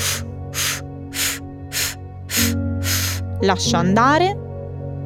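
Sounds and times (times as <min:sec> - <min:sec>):
inhale through the nose during a breathing exercise: 0:00.0 - 0:03.4
short exhalations through the mouth during a breathing exercise: 0:00.0 - 0:03.4
speech: 0:03.4 - 0:04.4.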